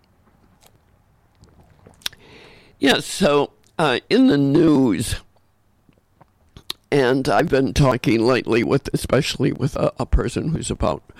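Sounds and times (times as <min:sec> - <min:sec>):
person sipping water: 0:00.5 - 0:02.8, 0:05.3 - 0:06.9
soft wet slurping and swallowing: 0:00.6 - 0:02.6
speech: 0:02.8 - 0:05.2, 0:06.9 - 0:11.1.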